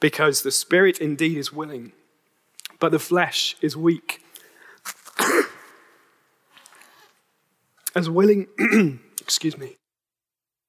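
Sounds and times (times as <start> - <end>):
speech: 0.0 - 2.0, 2.8 - 4.2, 8.0 - 9.8
man clearing throat with rasping grunts: 5.2 - 5.8, 8.6 - 9.1
man coughing: 5.2 - 5.9, 8.6 - 9.1.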